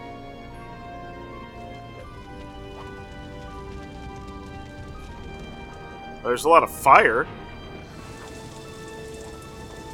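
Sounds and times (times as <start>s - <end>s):
steady rain striking a surface: 1.8s - 6.3s, 7.6s - 9.9s
speech: 6.2s - 7.4s.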